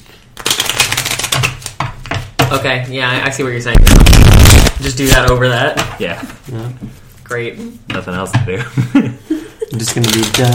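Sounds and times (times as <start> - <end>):
deck of cards shuffling: 0.4 - 1.8, 3.8 - 5.2, 9.8 - 10.5
speech: 2.5 - 10.5.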